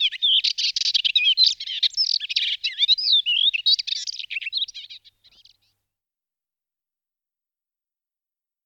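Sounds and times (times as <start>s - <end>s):
melodious warbler Hippolais polyglotta song: 0.0s - 5.8s.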